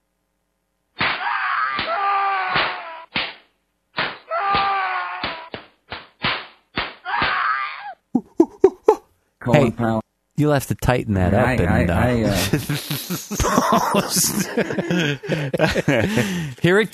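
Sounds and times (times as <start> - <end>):
loud sharp slaps: 1.0 - 7.6
wailing yelp-like cries: 1.1 - 3.2, 4.2 - 5.6, 7.0 - 8.0
laughter: 8.2 - 9.0, 12.2 - 16.9
speech: 9.5 - 16.9.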